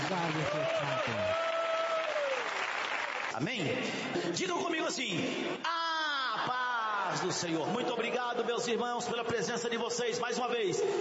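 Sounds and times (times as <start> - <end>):
congregation clapping: 0.0 - 4.2
speech: 0.2 - 1.2, 3.4 - 5.8, 6.4 - 10.9.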